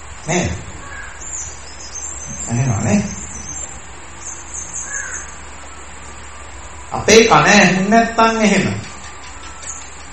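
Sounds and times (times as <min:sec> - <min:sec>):
steady hiss: 0:00.0 - 0:10.1
speech: 0:00.2 - 0:00.7, 0:02.5 - 0:03.2, 0:06.9 - 0:08.8
crow cawing: 0:00.6 - 0:01.6, 0:04.6 - 0:06.9, 0:08.9 - 0:10.1.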